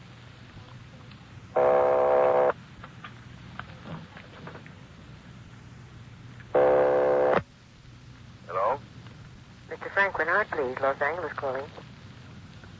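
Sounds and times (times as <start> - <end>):
telephone ringing tone heard through receiver: 1.6 - 2.5, 6.6 - 7.4
speech: 10.1 - 11.8.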